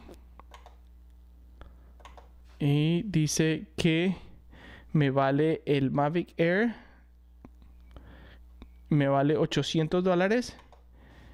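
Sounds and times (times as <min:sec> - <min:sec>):
steady low electrical hum: 0:00.0 - 0:11.3
computer mouse clicks: 0:00.4 - 0:00.9, 0:02.0 - 0:02.3, 0:10.6 - 0:10.8
speech: 0:02.6 - 0:04.3, 0:04.9 - 0:06.8, 0:08.9 - 0:10.6.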